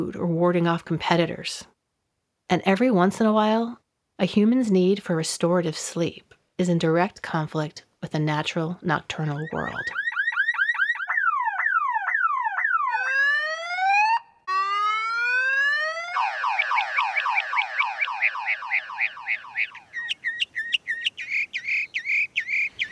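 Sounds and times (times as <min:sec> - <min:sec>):
speech: 0:00.0 - 0:01.7, 0:02.5 - 0:10.0
mockingbird mimicking a car alarm with electronic-sounding phrases: 0:09.2 - 0:22.8.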